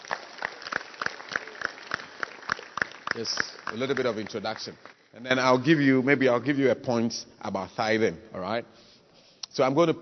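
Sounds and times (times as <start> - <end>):
audience clapping hands in a steady rhythmic beat: 0.0 - 5.5
speech: 3.2 - 8.9, 9.6 - 9.9.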